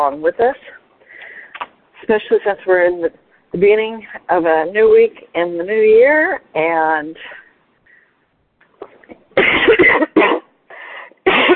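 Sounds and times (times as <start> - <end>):
speech: 0.0 - 0.8, 2.1 - 7.4
harsh coughing: 9.4 - 10.5, 11.2 - 11.5.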